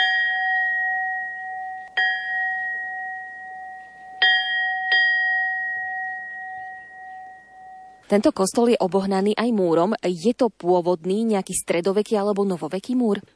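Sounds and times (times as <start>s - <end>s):
small church bell ringing: 0.0s - 8.1s
speech: 8.1s - 13.3s.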